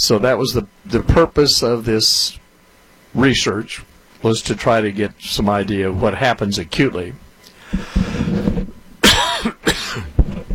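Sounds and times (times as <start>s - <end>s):
speech: 0.0s - 2.4s, 3.1s - 8.6s
person coughing: 9.0s - 10.2s.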